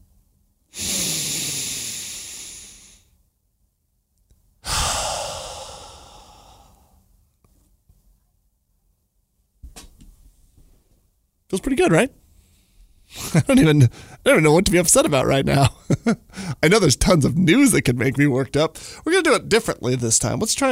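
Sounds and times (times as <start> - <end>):
deep breath drawn in and let out during a guided calming pause: 0.7 - 3.2, 4.6 - 7.1, 12.3 - 14.2, 16.2 - 16.6, 18.8 - 19.0
speech: 11.5 - 12.2, 13.3 - 20.7.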